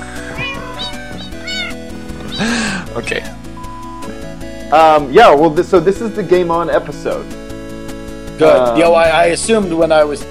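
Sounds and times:
cats in a video game meowing: 0.0 - 2.9
loud continuous video game music: 0.0 - 10.2
speech: 2.4 - 3.4, 4.7 - 7.4, 8.4 - 10.2.

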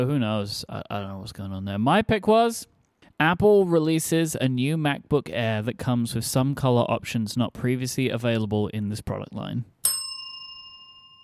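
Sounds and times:
speech: 0.0 - 9.7
hand bell ringing with a clear metallic tone: 9.8 - 11.2.

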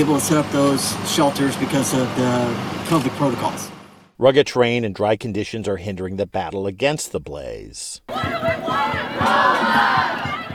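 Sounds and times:
speech: 0.0 - 8.6
crowd of striking graduate students chanting and shouting over low wages: 8.1 - 10.5
regular beats: 8.1 - 10.5.

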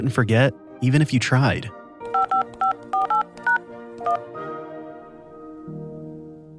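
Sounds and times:
speech: 0.0 - 1.8
touch-tone phone dialing beeps: 2.1 - 4.2.

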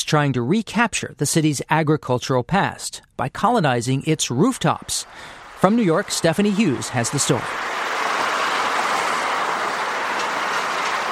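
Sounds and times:
speech: 0.1 - 7.8
elevated subway train rumbling past: 4.6 - 11.1.

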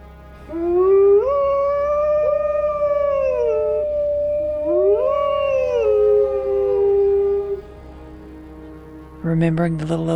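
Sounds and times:
wolves howling in overlapping tones: 0.4 - 7.8
speech: 9.4 - 10.1.

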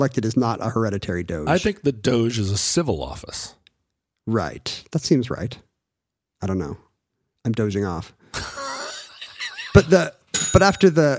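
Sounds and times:
speech: 0.0 - 3.6, 4.3 - 5.7, 6.4 - 8.6, 9.8 - 11.1
laughter: 8.4 - 10.2
small bell ringing: 10.4 - 11.1.

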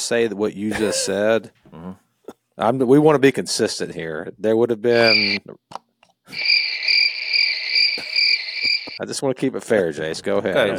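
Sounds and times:
speech: 0.1 - 2.0, 2.6 - 6.6, 9.0 - 10.7
cricket chirping sound effect: 4.9 - 5.4, 6.3 - 9.0.

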